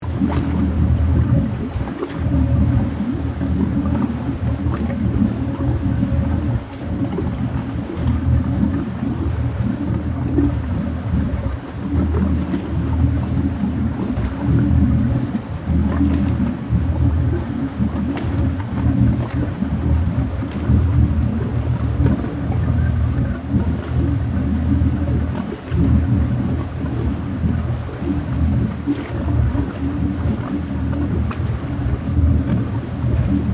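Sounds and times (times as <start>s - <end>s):
water gurgling at boat: 0.0s - 33.5s
police marine boat dual engines idling: 0.1s - 33.5s.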